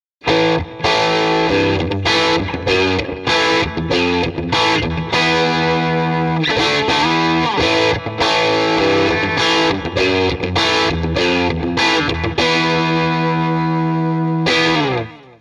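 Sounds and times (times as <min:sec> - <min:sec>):
electric guitar bridge pickup through JTM45 amplifier: 0:00.2 - 0:15.4.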